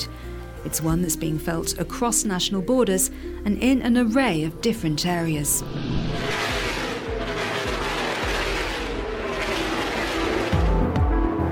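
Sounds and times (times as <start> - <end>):
speech: 0.6 - 6.4
NASCAR race car engines roaring at a track in Texas: 5.4 - 10.9.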